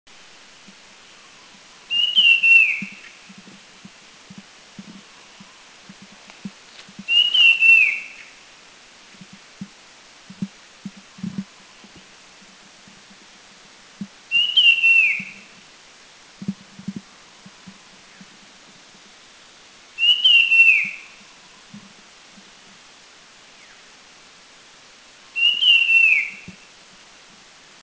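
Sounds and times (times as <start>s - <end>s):
Puff-throated Babbler in Thailand: 1.9s - 3.2s, 7.1s - 8.3s, 14.3s - 15.5s, 20.0s - 21.1s, 25.4s - 26.6s.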